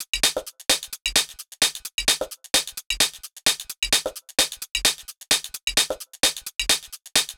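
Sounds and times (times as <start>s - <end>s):
hi-hat loop: 0.0s - 7.3s.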